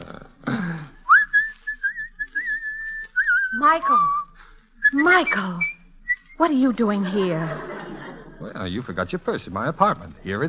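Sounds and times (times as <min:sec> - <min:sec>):
person whistling a short wavering tune: 0:01.1 - 0:06.4
speech: 0:03.7 - 0:04.2, 0:04.9 - 0:05.7, 0:06.4 - 0:07.8, 0:08.5 - 0:10.4
laughter: 0:06.8 - 0:10.0.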